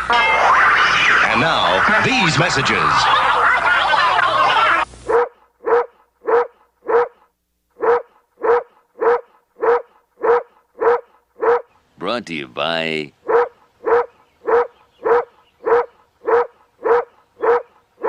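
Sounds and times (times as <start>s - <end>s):
laughter: 0.2s - 4.9s
speech: 1.4s - 3.4s, 12.2s - 13.2s
dog barking: 5.1s - 11.7s, 13.2s - 18.0s.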